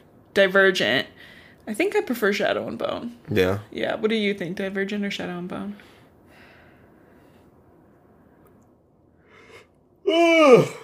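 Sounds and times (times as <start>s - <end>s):
speech: 0.4s - 5.9s, 10.1s - 10.8s
bored person yawning: 10.0s - 10.8s.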